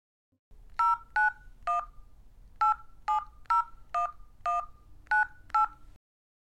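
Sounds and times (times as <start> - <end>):
touch-tone beeps of a telephone number being dialed: 0.8 - 2.0, 2.6 - 5.8.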